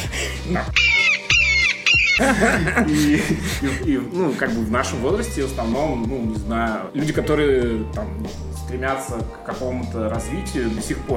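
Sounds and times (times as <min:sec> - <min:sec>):
speech: 0:00.5 - 0:00.8, 0:02.2 - 0:11.1
shrill squawks from eagles flying around: 0:00.7 - 0:02.4
laughter: 0:02.2 - 0:04.5.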